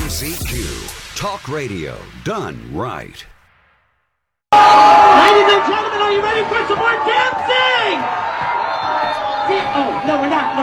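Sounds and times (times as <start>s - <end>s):
speech: 0.2s - 3.3s, 4.7s - 10.6s
large crowd booing a speaker off stage: 4.5s - 10.6s.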